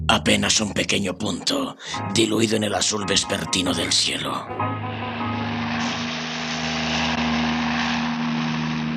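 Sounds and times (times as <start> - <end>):
speech: 0.2 - 4.7
helicopter in flight engine drone heard from inside: 4.5 - 8.9.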